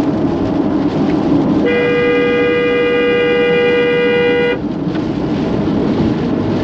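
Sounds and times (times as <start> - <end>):
engine and road noise: 0.0 - 6.6
car horn honking to scare buzzards off the road: 1.6 - 4.6.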